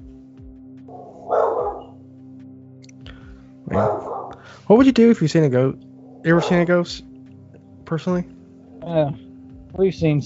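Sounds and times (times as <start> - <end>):
dog barking: 0.9 - 2.0, 3.7 - 4.4, 6.2 - 6.7
speech: 4.7 - 7.1, 7.9 - 10.2.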